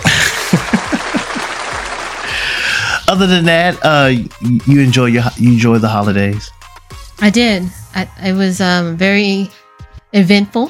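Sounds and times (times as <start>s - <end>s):
laughter: 0.0s - 3.0s
canned applause sound effect of a crowd clapping: 0.0s - 3.4s
speech: 3.1s - 6.6s, 7.2s - 10.6s.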